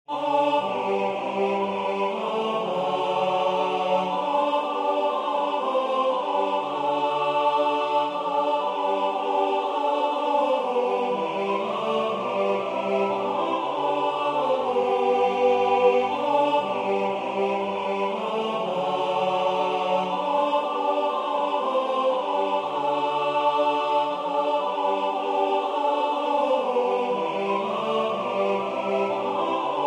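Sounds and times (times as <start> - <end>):
tenor singing a hymn: 0.1 - 29.8.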